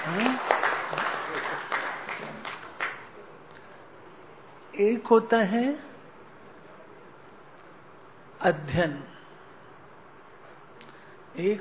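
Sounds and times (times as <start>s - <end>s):
audience applause of many hands clapping: 0.0s - 3.1s
speech: 0.1s - 0.5s, 4.8s - 5.9s, 8.4s - 9.1s, 11.4s - 11.6s.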